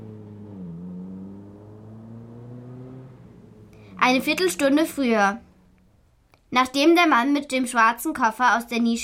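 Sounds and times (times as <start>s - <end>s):
taxi engine humming while turning into a gas station: 0.0s - 6.5s
speech: 4.0s - 5.5s, 6.5s - 9.0s.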